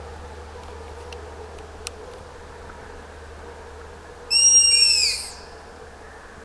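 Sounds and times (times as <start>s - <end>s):
quiet background hum: 0.0s - 6.4s
striped owl screeching: 4.3s - 5.5s.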